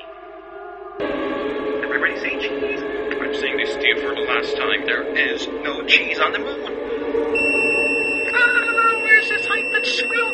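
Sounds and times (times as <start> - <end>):
piercing high-pitched radio signal from a black monolith on the moon: 1.0 - 10.3
voices murmuring: 1.8 - 10.3
speech: 2.1 - 7.4, 9.6 - 10.3.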